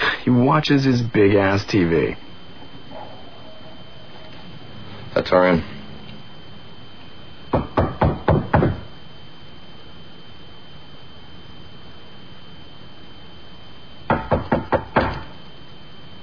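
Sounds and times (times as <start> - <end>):
speech: 0.3 - 2.3, 5.3 - 5.7
firm knocking on a door: 7.5 - 8.9, 14.1 - 15.3.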